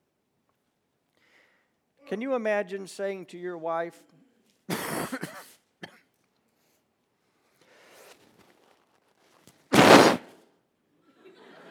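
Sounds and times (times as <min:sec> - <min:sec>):
speech: 0:02.1 - 0:04.2
person coughing: 0:04.7 - 0:05.4
faint rustle: 0:09.8 - 0:10.3.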